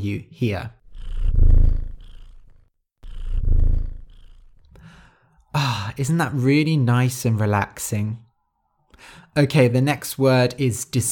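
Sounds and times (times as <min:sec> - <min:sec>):
speech: 0:00.0 - 0:00.8, 0:05.6 - 0:08.2, 0:09.0 - 0:11.1
cat purring: 0:00.8 - 0:05.0.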